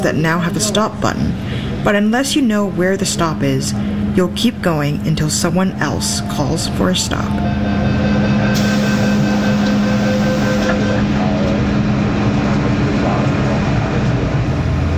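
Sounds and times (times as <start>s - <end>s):
speech: 0.0s - 8.0s
Hong Kong MTR metro train rumbling: 0.0s - 14.9s
constant low electric hum of metro train: 0.0s - 14.9s
faint whining tones: 2.8s - 12.2s.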